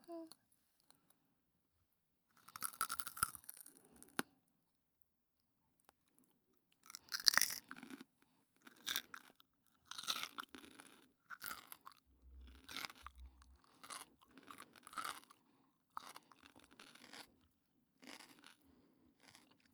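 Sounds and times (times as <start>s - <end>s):
person chewing crunchy food: 2.4s - 4.2s, 6.8s - 19.7s.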